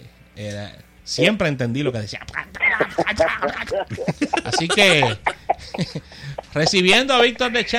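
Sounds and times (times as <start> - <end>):
speech: 0.4 - 7.7
person doing raspy garbled cartoon duck voice: 2.1 - 5.2
laughter: 2.4 - 7.7.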